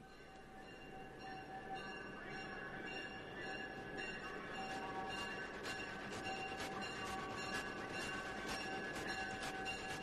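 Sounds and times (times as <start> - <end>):
train running on rails: 0.0 - 10.0
rhythmic train wheel clacks: 4.6 - 10.0.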